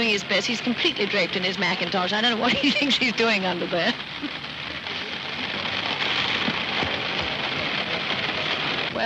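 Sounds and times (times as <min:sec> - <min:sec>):
speech: 0:00.0 - 0:04.4
heavy rain: 0:00.0 - 0:09.0
drops pattering on a hard surface: 0:03.9 - 0:08.6.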